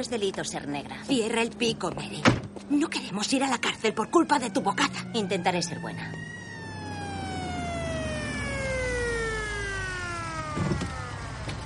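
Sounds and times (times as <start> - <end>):
speech: 0.0 - 6.3
low road rumble: 0.0 - 11.6
police patrol car siren wailing: 2.8 - 11.6.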